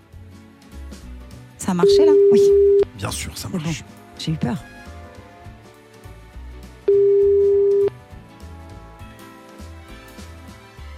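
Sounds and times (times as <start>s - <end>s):
speech: 1.7s - 4.8s
telephone ringback tone: 1.8s - 2.9s, 6.9s - 7.9s.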